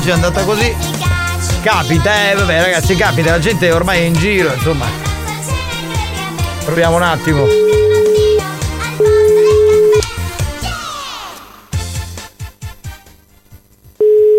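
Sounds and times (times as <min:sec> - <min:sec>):
speech: 0:00.0 - 0:05.1, 0:06.6 - 0:07.8
telephone ringing tone on an unanswered call during a live phone-in game: 0:07.4 - 0:10.0, 0:14.0 - 0:14.3.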